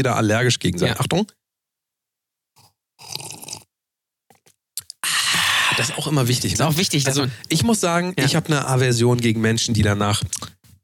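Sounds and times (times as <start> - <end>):
speech: 0.0 - 1.4, 5.8 - 10.5
person sipping and slurping mulled wine: 2.6 - 3.7, 4.8 - 6.0
wet mouth clicks: 4.3 - 5.4, 10.3 - 10.6.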